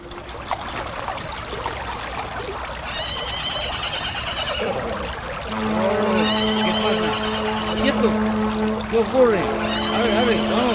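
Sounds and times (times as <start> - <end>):
rush of flowing water near a bridge on a mountain path: 0.0 - 10.7
horse whinnying as it rears up on a mountain path: 2.9 - 5.0, 6.1 - 8.0, 9.6 - 10.4
speech: 8.9 - 10.7.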